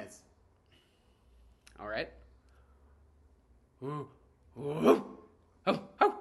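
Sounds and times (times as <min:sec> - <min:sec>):
speech: 0:01.8 - 0:02.2, 0:03.8 - 0:05.8
person imitating dog barking: 0:03.8 - 0:06.2.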